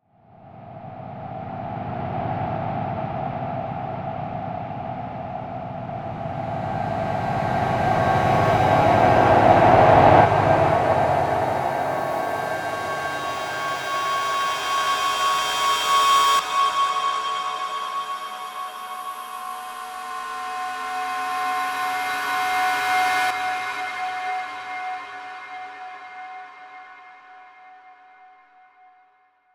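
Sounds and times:
eerie feedback swells: 0.6s - 23.7s.

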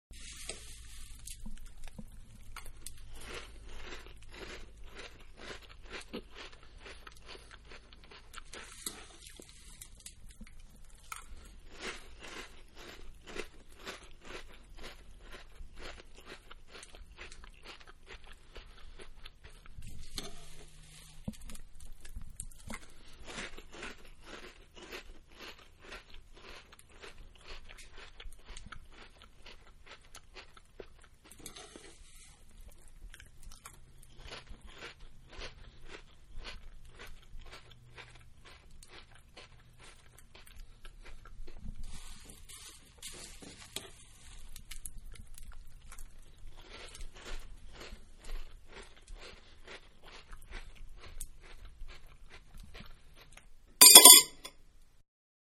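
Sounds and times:
person eating cereal: 0.1s - 54.3s.

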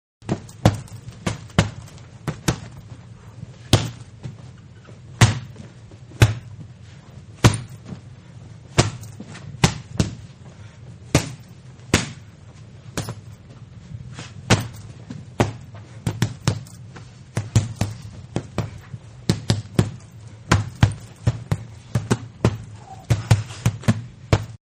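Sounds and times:
two-handed boxing punches on a heavy bag: 0.2s - 2.9s, 3.6s - 4.3s, 5.2s - 6.6s, 7.4s - 8.0s, 8.7s - 10.3s, 11.0s - 12.3s, 12.9s - 13.4s, 14.2s - 24.6s.

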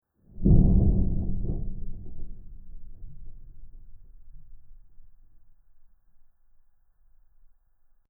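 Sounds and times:
deep metal underwater boom impact: 0.3s - 6.4s.

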